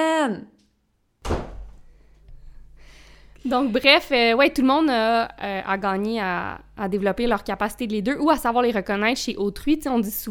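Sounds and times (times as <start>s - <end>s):
speech: 0.0s - 0.5s, 3.4s - 10.3s
door thudding shut: 1.2s - 1.9s.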